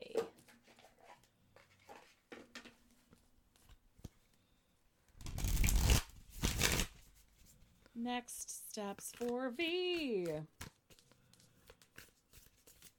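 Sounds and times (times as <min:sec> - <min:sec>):
deck of cards being handled and cards pulled: 0:05.2 - 0:07.6, 0:09.0 - 0:12.9
speech: 0:08.0 - 0:10.6.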